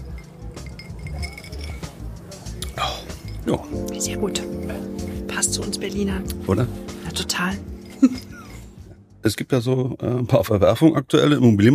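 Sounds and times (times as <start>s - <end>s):
glasses of gin clinking in a toast: 0.0s - 8.9s
speech: 3.4s - 8.3s, 9.2s - 11.7s.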